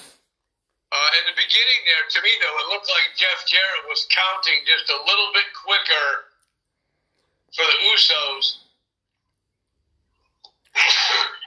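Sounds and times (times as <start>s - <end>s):
speech: 1.5s - 6.3s, 7.5s - 8.6s
loud sneeze: 10.7s - 11.4s.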